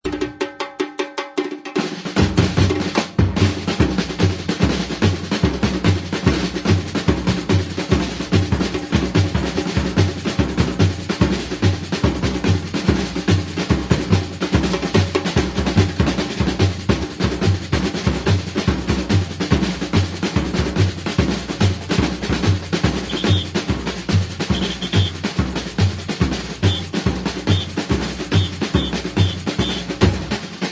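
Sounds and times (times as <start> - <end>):
fast batucada samba drumming: 0.0 - 30.7
fast wings flapping by: 23.0 - 23.6, 24.5 - 25.1, 28.3 - 29.8.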